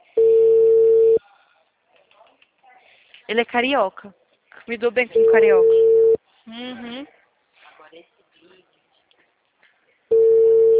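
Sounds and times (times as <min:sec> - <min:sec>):
telephone ringback tone during an outgoing call: 0:00.2 - 0:01.2, 0:05.2 - 0:06.2, 0:10.1 - 0:10.7
speech: 0:03.3 - 0:05.8, 0:06.5 - 0:07.2.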